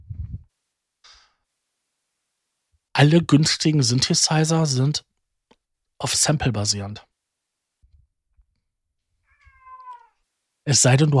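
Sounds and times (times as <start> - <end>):
soft low thumps or bumps: 0.0 - 0.5
speech: 3.0 - 5.1, 6.0 - 7.1, 10.6 - 11.1
cat meowing: 9.2 - 10.2.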